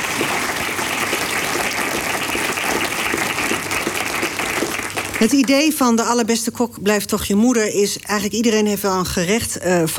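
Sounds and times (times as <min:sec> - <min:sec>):
large audience applause: 0:00.0 - 0:05.7
speech: 0:05.2 - 0:09.9.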